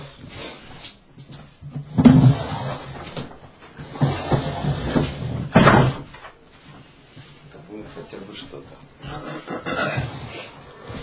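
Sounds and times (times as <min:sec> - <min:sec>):
wooden door being opened with clunks creaks and rattles: 0:01.8 - 0:06.2.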